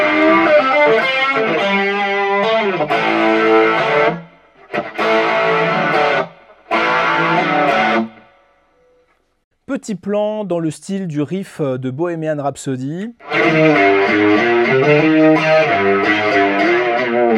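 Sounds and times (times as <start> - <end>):
electric guitar through chorus and distortion pedals playing sustained melodic line: 0.0 - 8.8, 13.2 - 17.3
speech: 9.8 - 17.3.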